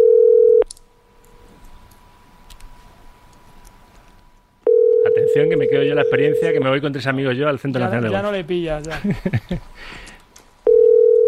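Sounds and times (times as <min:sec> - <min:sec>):
telephone ringing tone on an unanswered outgoing call: 0:00.0 - 0:00.6, 0:04.6 - 0:06.6, 0:10.6 - 0:11.2
faint noise: 0:00.0 - 0:11.2
speech: 0:05.4 - 0:10.1
laughter: 0:08.8 - 0:09.8.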